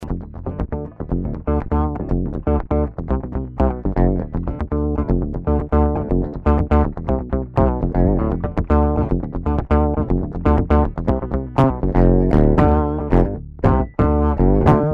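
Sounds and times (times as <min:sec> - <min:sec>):
octave metal: 0:00.0 - 0:14.9.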